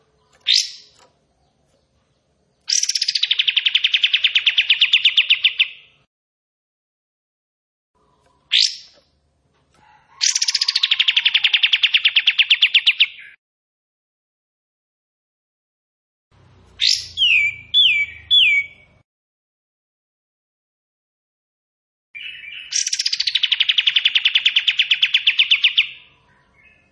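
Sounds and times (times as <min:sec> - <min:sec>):
bulbul singing: 0:00.0 - 0:06.0, 0:08.0 - 0:09.2, 0:10.2 - 0:13.4, 0:16.8 - 0:19.0, 0:22.2 - 0:26.8.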